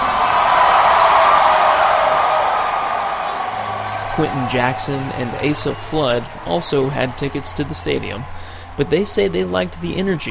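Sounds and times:
large outdoor crowd cheering and clapping: 0.0s - 10.2s
speech: 4.2s - 10.2s.

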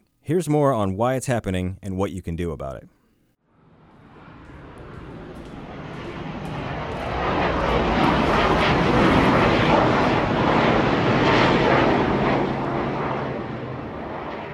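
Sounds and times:
speech: 0.3s - 3.0s
Boeing F-18 Hornet military jet flying low over a residential neighborhood: 3.5s - 14.5s.

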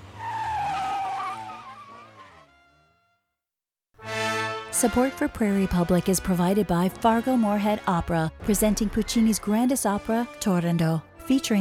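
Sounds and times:
car tires squealing as a car peels away: 0.0s - 2.9s
speech: 4.8s - 11.5s.

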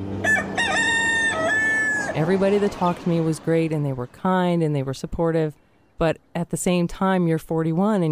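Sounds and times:
rooster crowing: 0.2s - 2.5s
speech: 2.2s - 8.1s.

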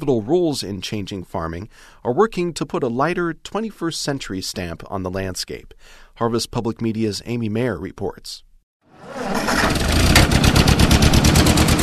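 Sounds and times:
speech: 0.0s - 10.3s
old 1947 Ford 2N tractor engine starting and chugging: 9.2s - 11.8s.

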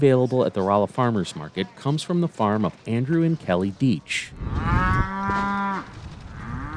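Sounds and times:
speech: 0.0s - 5.4s
outdoor background on a Missouri ranch: 0.0s - 6.7s
beefalo mooing on a Missouri ranch: 4.5s - 6.7s.

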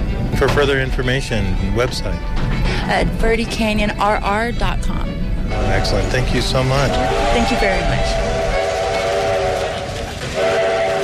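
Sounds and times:
moving train rumbling and clattering: 0.0s - 11.0s
speech: 0.4s - 8.3s
loud sustained train whistle: 5.5s - 11.0s.

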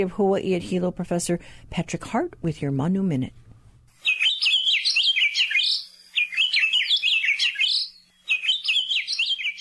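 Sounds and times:
speech: 0.0s - 3.4s
Akiapolaau honeycreeper singing warbling phrases of high chirps and trills: 4.0s - 9.5s.

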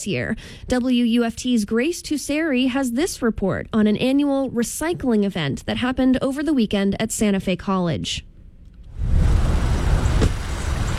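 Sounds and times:
speech: 0.0s - 8.3s
line of cars idling in a parking lot: 8.9s - 10.9s.

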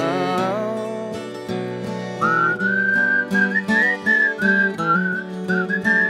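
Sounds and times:
sustained instrumental backing: 0.0s - 6.0s
person whistling a bright melody: 2.2s - 6.0s.

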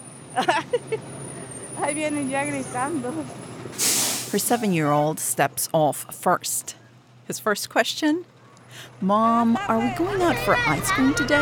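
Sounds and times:
school bus engine rumbling while pulling up to a bus stop: 0.0s - 11.4s
speech: 0.4s - 11.4s
short hissing bursts from a school bus: 3.8s - 4.7s.

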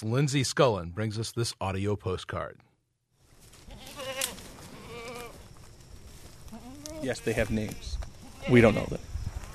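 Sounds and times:
speech: 0.0s - 2.7s, 7.0s - 9.1s
steady outdoor ambience: 0.0s - 9.5s
goats bleating in a backyard: 3.6s - 5.4s, 6.5s - 9.0s.

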